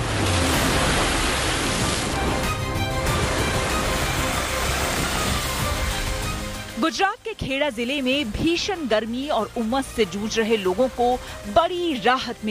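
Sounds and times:
high pre-monsoon sea waves crashing: 0.0 - 7.0
speech: 6.9 - 12.5.

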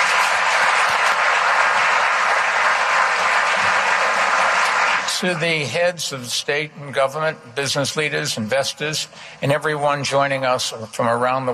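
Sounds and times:
audience applause at an international business forum in New York City: 0.0 - 5.6
speech: 5.2 - 11.5.

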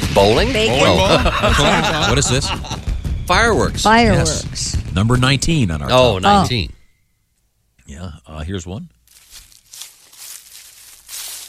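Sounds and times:
speech: 0.2 - 6.8, 7.9 - 9.0
laughter: 0.7 - 3.0
footsteps walking through weeds: 9.0 - 11.4.

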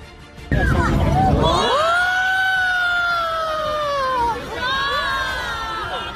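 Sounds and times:
crowd of people yelling in alarm: 0.5 - 6.1
loud rumbling roar of rocket explosion: 0.6 - 2.2.

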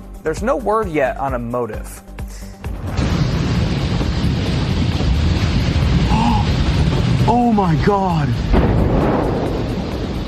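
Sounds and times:
speech: 0.2 - 2.1, 7.3 - 9.3
fuel tank explosion sparked by lightning: 2.7 - 10.2.

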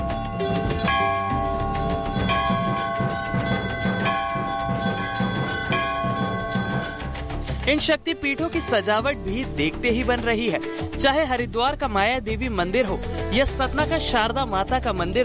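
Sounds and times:
temple gongs ringing during Navratri worship: 0.0 - 7.5
temple bells ringing during Navratri worship: 0.0 - 9.2
speech: 7.7 - 15.2.

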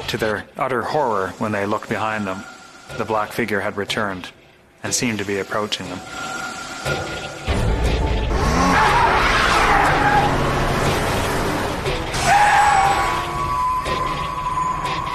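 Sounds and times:
speech: 0.1 - 7.6
car engine roaring as the car speeds away: 8.3 - 13.7
car tires screeching: 8.3 - 15.1.

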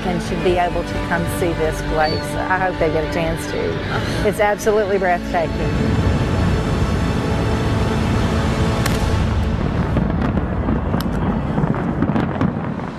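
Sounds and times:
speech: 0.0 - 5.9
steady loud rumbling roar: 5.5 - 12.9
fireworks bursting: 5.8 - 12.9
quick pops and bangs: 8.8 - 12.9
sharp crack: 8.8 - 12.9.

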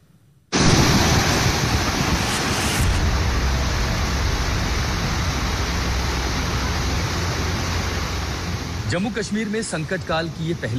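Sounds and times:
rushing floodwater torrent churning: 0.6 - 10.7
speech: 8.9 - 10.7.

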